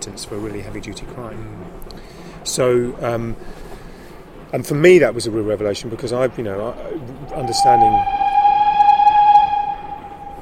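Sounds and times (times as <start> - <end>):
speech: 0.0 - 3.7, 4.5 - 8.3
low rumble of the passing train: 0.0 - 10.4
passing train horn blast: 7.3 - 10.4.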